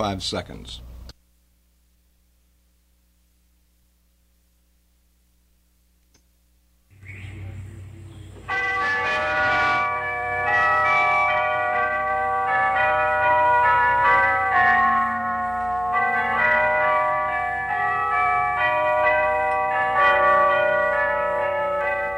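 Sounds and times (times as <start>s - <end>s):
speech: 0.0s - 0.9s
carillon of tubular bells ringing a slow melody: 7.3s - 22.1s.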